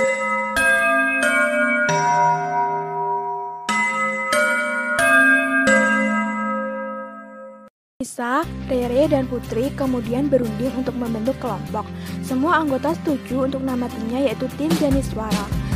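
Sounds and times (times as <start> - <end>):
school dismissal bell chime melody: 0.0 - 7.7
speech: 8.0 - 15.6.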